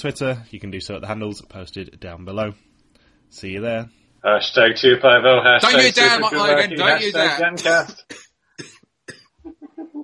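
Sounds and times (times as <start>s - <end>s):
speech: 0.0s - 2.7s, 3.3s - 8.7s
man coughing hard: 7.5s - 9.4s.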